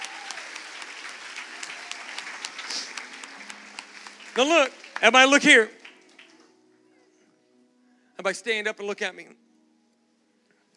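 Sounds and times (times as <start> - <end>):
audience applause at an evening gathering: 0.0 - 6.5
speech: 4.4 - 5.8, 8.2 - 9.4.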